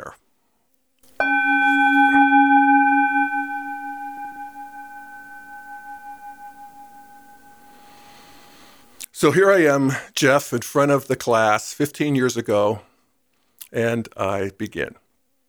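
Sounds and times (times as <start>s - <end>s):
gong strike: 1.2s - 8.8s
speech: 9.2s - 12.9s, 13.7s - 15.0s.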